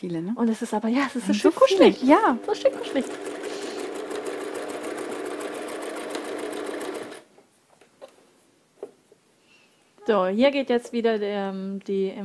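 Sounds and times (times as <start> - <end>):
speech: 0.0 - 3.3, 10.1 - 12.2
sewing machine stitching fleece fabric: 1.7 - 7.3.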